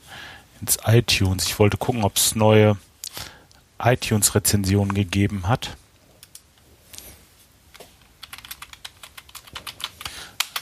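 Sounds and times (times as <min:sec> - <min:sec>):
speech: 0:00.6 - 0:02.9, 0:03.8 - 0:05.8
computer keyboard typing: 0:08.0 - 0:10.6.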